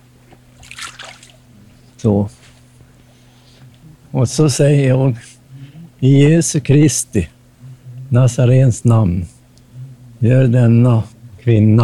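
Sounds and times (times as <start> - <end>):
steady low hum: 0.0 - 11.8
water poured over a patient on a bench across a stream: 0.6 - 1.4
speech: 2.0 - 2.4, 4.2 - 5.3, 6.0 - 7.4, 8.1 - 9.4, 10.2 - 11.8.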